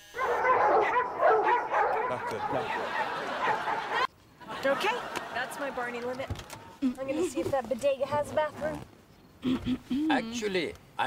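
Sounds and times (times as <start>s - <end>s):
several dogs barking and yipping: 0.1s - 4.1s
laughter: 2.0s - 6.3s
speech: 2.3s - 4.0s, 4.6s - 11.0s.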